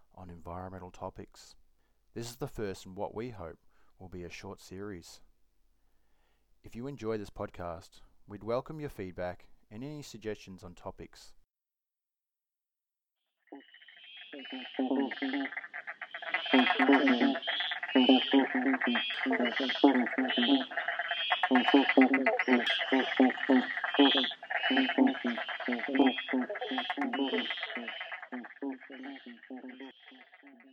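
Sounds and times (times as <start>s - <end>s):
speech: 0.4s - 5.3s, 6.6s - 11.4s, 14.3s - 15.8s, 16.5s - 30.7s
dense chorus of frogs croaking and trilling: 13.3s - 30.7s.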